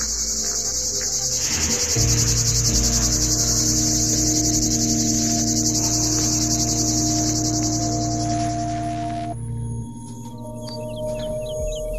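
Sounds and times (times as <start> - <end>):
common cicada buzzing: 0.0 - 9.4
steady low hum: 0.0 - 11.9.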